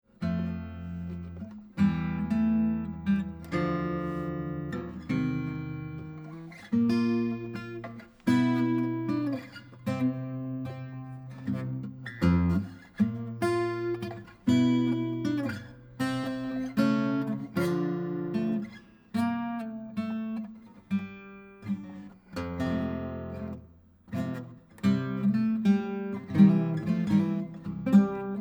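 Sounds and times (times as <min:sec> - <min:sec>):
12-string guitars: 0:00.1 - 0:28.3.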